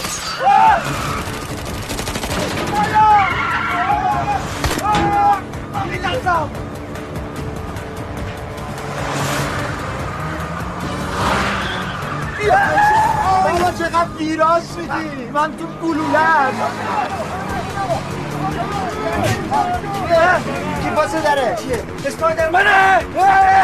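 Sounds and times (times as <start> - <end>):
car tires screeching during a chase: 0.0 - 23.6
roaring car engines during a fast chase: 0.0 - 23.6
rapid gunfire-like popping: 1.1 - 3.4
speech: 14.2 - 16.9, 19.2 - 23.6.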